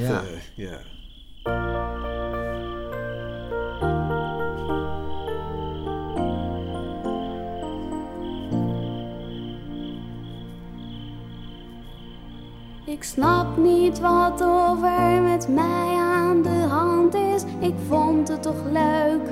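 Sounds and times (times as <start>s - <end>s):
speech: 0.0s - 1.7s, 13.1s - 19.2s
crickets chirping: 0.0s - 19.2s
loud sustained musical chords: 1.6s - 13.0s.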